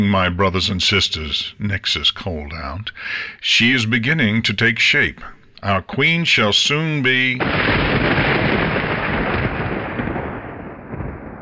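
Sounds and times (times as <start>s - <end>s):
speech: 0.0s - 8.3s
crashing thunder rumbling: 7.1s - 11.4s
lightning bolt strike: 7.2s - 11.4s.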